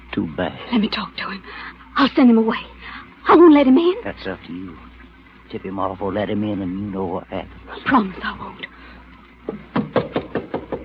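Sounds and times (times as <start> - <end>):
speech: 0.2 - 4.9, 5.5 - 8.8, 9.5 - 9.7
knocking on a wooden door: 9.4 - 10.8.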